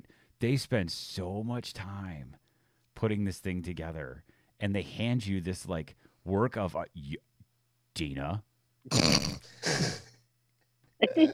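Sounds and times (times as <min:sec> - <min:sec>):
faint steady hum: 0:00.0 - 0:11.3
speech: 0:00.4 - 0:02.4, 0:03.0 - 0:07.3, 0:08.0 - 0:10.0, 0:11.0 - 0:11.3
person yawning: 0:08.9 - 0:10.1.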